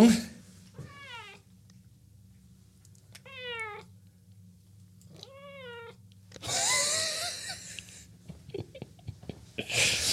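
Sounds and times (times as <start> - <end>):
speech: 0.0 - 0.3
cat giving a short thin breathy meow: 0.8 - 1.4, 3.2 - 3.9, 5.2 - 6.0
laughter: 6.4 - 10.1.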